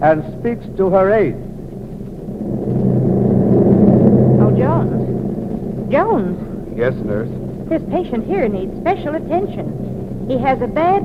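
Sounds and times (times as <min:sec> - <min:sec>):
speech: 0:00.0 - 0:01.5, 0:05.9 - 0:11.0
airplane engine drone in flight: 0:00.0 - 0:11.0
rising-and-falling squeal: 0:00.7 - 0:07.8.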